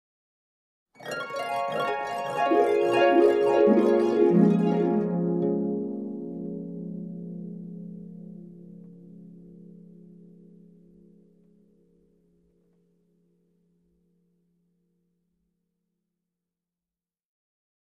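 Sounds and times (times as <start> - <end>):
descending dreamy harp sound effect: 1.0 - 11.6.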